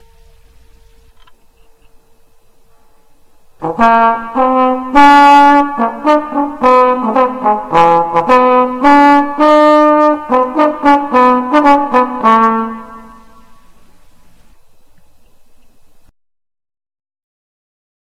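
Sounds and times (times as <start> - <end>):
trombone: 3.6 - 13.8.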